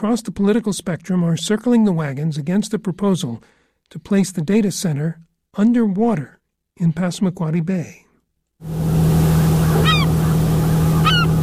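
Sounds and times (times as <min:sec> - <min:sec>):
speech: 0:00.0 - 0:08.0, 0:08.6 - 0:09.1
lobster boat engines idling on a bay at sunrise: 0:08.7 - 0:11.4
seabird calls over a bay: 0:08.7 - 0:11.4.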